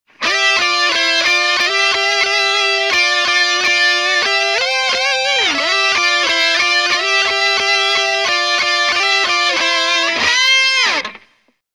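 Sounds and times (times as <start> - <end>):
rock melody and harmony: 0.2 - 11.2.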